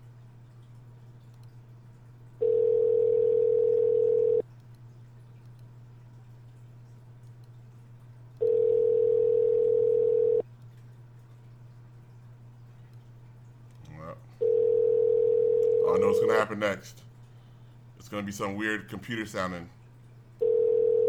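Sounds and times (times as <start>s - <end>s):
faint constant low hum: 0.0s - 21.0s
telephone ringback tone: 2.4s - 4.4s, 8.4s - 10.4s, 14.4s - 16.3s, 20.4s - 21.0s
speech: 16.6s - 17.0s, 18.1s - 19.8s.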